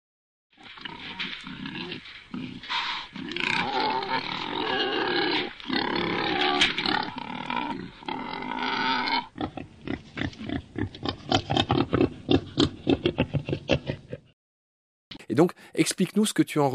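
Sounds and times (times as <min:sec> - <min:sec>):
wild boar squeals and grunts: 0:00.6 - 0:13.2
speech: 0:15.4 - 0:16.7.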